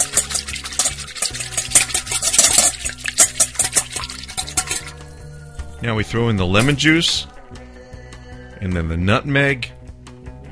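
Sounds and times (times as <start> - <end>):
whisk scraping a glass or aluminum bowl, whisking sour cream and egg yolk: 0.0 - 5.0
speech: 5.8 - 7.3, 8.6 - 9.8.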